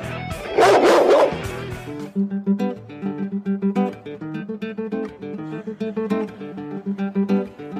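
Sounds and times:
steady rhythmic music with plucked notes: 0:00.0 - 0:07.7
dog barking loudly: 0:00.5 - 0:01.5.

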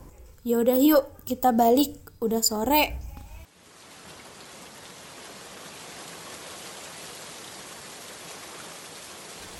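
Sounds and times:
speech: 0:00.4 - 0:03.0
steady rain pouring: 0:03.4 - 0:09.5.

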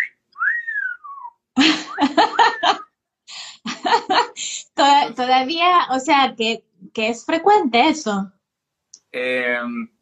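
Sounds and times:
person whistling a wolf whistle catcall: 0:00.0 - 0:01.4
speech: 0:01.6 - 0:02.4, 0:05.2 - 0:08.4, 0:09.1 - 0:09.9
laughter: 0:01.6 - 0:02.8, 0:03.7 - 0:04.4.

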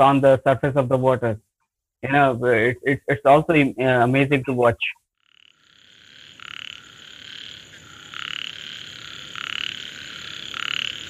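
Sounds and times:
speech: 0:00.0 - 0:01.4, 0:02.0 - 0:05.0
Indian bullfrog croaking mating call in India: 0:04.4 - 0:11.0.

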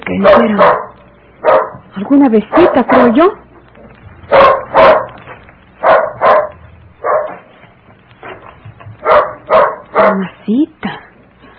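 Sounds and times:
dog barking at a stranger: 0:00.1 - 0:01.9, 0:02.5 - 0:03.2, 0:04.3 - 0:05.2, 0:05.8 - 0:07.5, 0:09.0 - 0:10.3
speech: 0:00.2 - 0:00.8, 0:02.0 - 0:03.4, 0:04.3 - 0:05.0.

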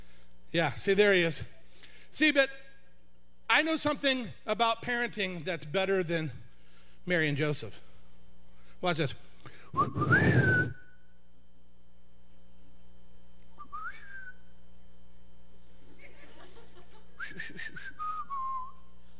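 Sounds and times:
speech: 0:00.5 - 0:02.6, 0:03.5 - 0:06.4, 0:07.1 - 0:07.8, 0:08.8 - 0:10.7
parent whistling a rising-and-falling signal call to his son: 0:09.7 - 0:11.1, 0:13.6 - 0:14.5, 0:17.2 - 0:18.9
laughter: 0:15.9 - 0:17.7.

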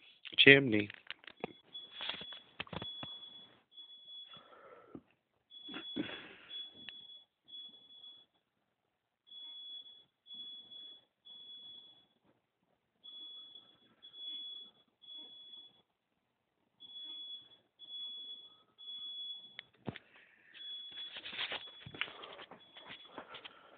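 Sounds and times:
speech: 0:00.4 - 0:01.0
smoke alarm beeping: 0:00.5 - 0:04.8, 0:05.5 - 0:08.5, 0:09.2 - 0:12.3, 0:13.0 - 0:16.1, 0:16.8 - 0:23.7
rustling and clattering: 0:19.8 - 0:23.7.

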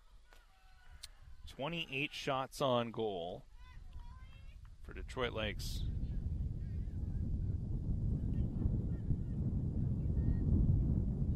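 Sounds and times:
speech: 0:01.5 - 0:03.5, 0:04.9 - 0:05.9
wind gusting outdoors buffeting the microphone during a game: 0:03.6 - 0:11.3.

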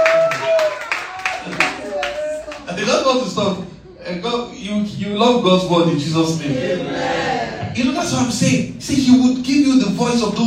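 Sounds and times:
audience clapping: 0:00.0 - 0:02.8
speech: 0:03.1 - 0:07.1, 0:07.7 - 0:10.4.

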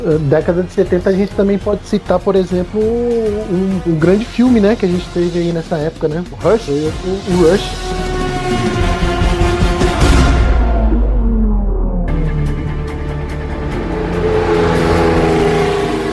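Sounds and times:
speech: 0:00.0 - 0:08.0
Ferrari Formula 1 car engine revving during testing at Fiorano, Italy: 0:07.8 - 0:16.1.

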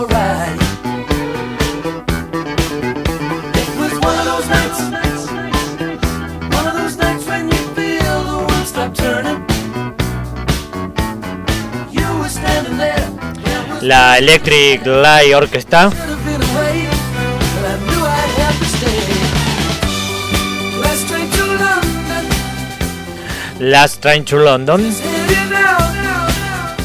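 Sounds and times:
layered vocals: 0:00.0 - 0:01.8, 0:03.5 - 0:09.7, 0:11.9 - 0:19.8, 0:20.5 - 0:22.7
crisp drums: 0:00.0 - 0:26.8
keyboards: 0:00.0 - 0:26.8
prominent bouncing bass line: 0:00.0 - 0:26.8
speech: 0:13.8 - 0:16.1, 0:23.6 - 0:25.5.

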